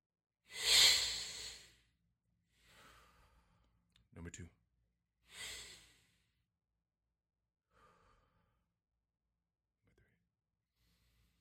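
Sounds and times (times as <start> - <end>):
person breathing deeply: 0.5 - 1.9, 2.5 - 3.6, 5.2 - 6.4, 7.7 - 8.6.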